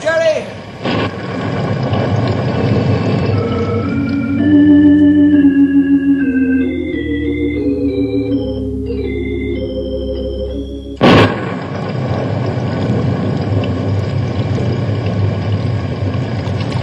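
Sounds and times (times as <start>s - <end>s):
heavy rain pouring while a small boat is paddled in the dark: 0.0s - 4.3s, 11.0s - 16.8s
melodic music cue: 3.0s - 11.2s.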